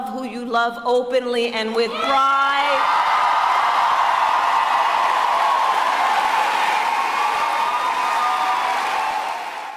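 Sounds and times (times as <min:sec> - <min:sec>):
speech: 0:00.5 - 0:03.0
large rally crowd cheering and applauding in La Crosse Wisconsin: 0:02.7 - 0:09.7.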